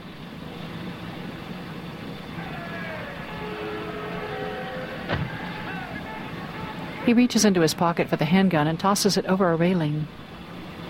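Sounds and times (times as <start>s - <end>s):
car engine humming as the car pulls to a stop: 0.0s - 9.4s
passenger-side car door opening thunk: 5.1s - 5.3s
speech: 7.1s - 10.3s.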